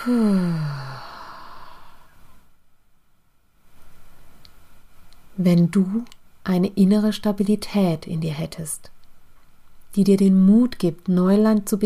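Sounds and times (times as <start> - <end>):
speech: 0.0 - 0.8, 5.4 - 9.0, 9.9 - 11.8
long exhale through the mouth during a guided breathing exercise: 0.0 - 2.4
quiet inhale through the nose during a guided breathing exercise: 0.0 - 2.5.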